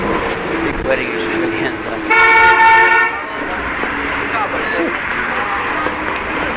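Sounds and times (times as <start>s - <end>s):
city bus engine roar passing on a busy street: 0.0s - 6.5s
traffic noise: 0.0s - 6.5s
city bus horn toot: 2.0s - 3.4s.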